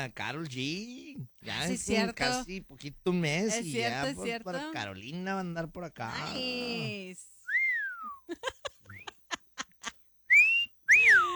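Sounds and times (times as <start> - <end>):
speech: 0.0 - 7.3, 8.3 - 8.6
person whistling tonal phrases: 7.5 - 8.3, 10.3 - 11.3
laughter-like sounds: 8.2 - 10.0.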